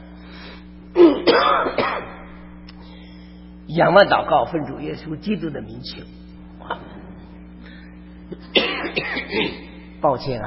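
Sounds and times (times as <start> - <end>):
steady low hum: 0.0 - 10.4
person with a lingering cough after a cold coughing: 1.0 - 2.3, 8.3 - 10.0
speech: 1.2 - 1.8, 3.7 - 6.8, 8.3 - 10.4.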